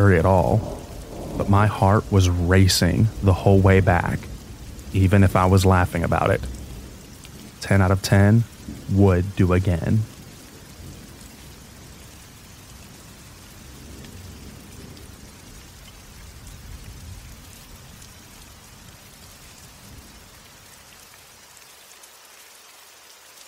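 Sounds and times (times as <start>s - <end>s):
speech: 0.0s - 0.8s, 1.4s - 4.3s, 4.9s - 6.6s, 7.6s - 10.1s
low rolling thunder rumbling: 0.0s - 18.0s
light rain pattering: 0.0s - 23.4s.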